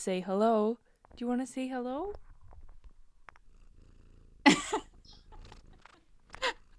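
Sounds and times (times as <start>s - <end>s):
speech: 0.0s - 2.2s
female cat purring while walking over a person: 2.0s - 6.7s.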